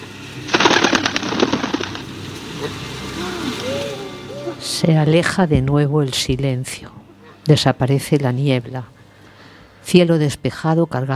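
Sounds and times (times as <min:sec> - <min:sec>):
owl wings fluttering through the air: 0:00.5 - 0:02.2
speech: 0:04.6 - 0:09.0, 0:09.8 - 0:11.1.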